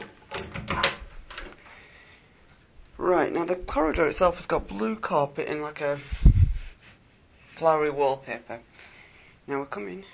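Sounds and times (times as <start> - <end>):
door at the front of a corridor being opened: 0.0 - 1.6
speech: 3.1 - 6.3, 7.6 - 8.9, 9.5 - 10.1.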